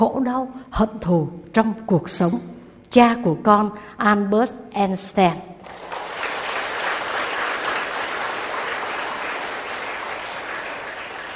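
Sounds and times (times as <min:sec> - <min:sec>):
speech: 0:00.0 - 0:05.8
large audience applause: 0:05.6 - 0:11.3.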